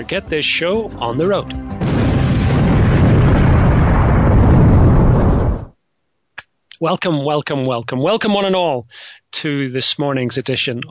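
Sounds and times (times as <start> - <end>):
speech: 0.0 - 1.8, 6.8 - 10.8
explosion debris crackling: 1.8 - 5.8
explosion rumbling: 1.8 - 5.8.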